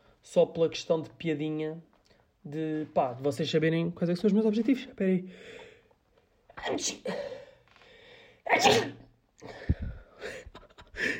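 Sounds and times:
speech: 0.2s - 5.6s, 6.6s - 7.4s, 8.5s - 10.4s
sneeze: 6.6s - 7.3s, 8.5s - 9.1s.

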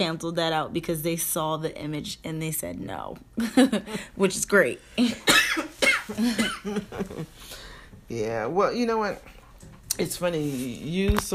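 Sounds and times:
speech: 0.0s - 9.4s, 10.0s - 11.3s
harsh coughs from a tickle in the throat: 5.0s - 6.9s.

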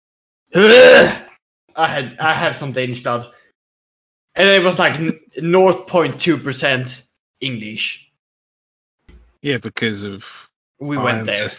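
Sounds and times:
speech: 0.5s - 1.2s, 1.8s - 3.4s, 4.4s - 8.1s, 9.4s - 11.5s
loud sneeze: 0.6s - 1.3s.

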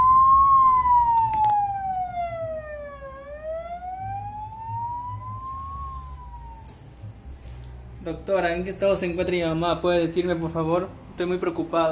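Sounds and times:
ambulance siren wailing: 0.0s - 6.8s
low rumble of road traffic: 0.0s - 11.8s
speech: 8.1s - 11.8s.

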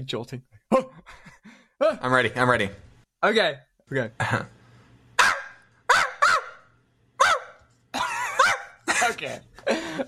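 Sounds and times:
speech: 0.0s - 1.2s, 1.8s - 4.6s, 9.2s - 10.0s
dog barking: 5.2s - 7.6s, 8.3s - 8.8s.

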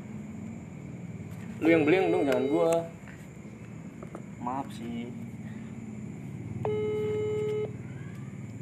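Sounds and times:
speech: 1.6s - 3.0s, 4.4s - 5.3s
phone call electronic ringing tone: 6.7s - 7.8s.

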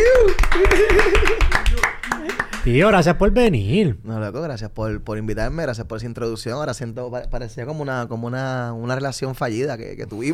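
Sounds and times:
laughter: 0.0s - 2.6s
person cheering or laughing loudly: 0.0s - 2.7s
few people applauding: 0.0s - 3.1s
speech: 2.7s - 10.3s.

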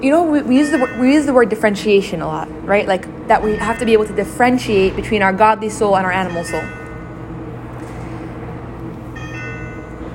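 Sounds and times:
speech: 0.0s - 6.8s
brighter higher ringing layer: 0.0s - 10.1s
bell ringing with a sustained metallic tone: 0.4s - 2.1s, 3.4s - 7.6s, 9.1s - 10.1s.

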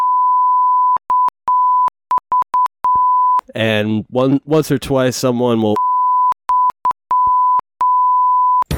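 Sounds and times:
loud pure censor bleep tone: 0.0s - 3.4s, 5.8s - 8.6s
speech: 3.6s - 5.8s.

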